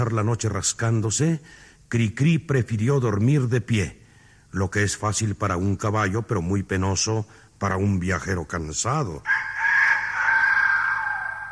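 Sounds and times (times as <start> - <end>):
speech: 0.0 - 9.6
rooster crowing at dawn: 9.2 - 11.5.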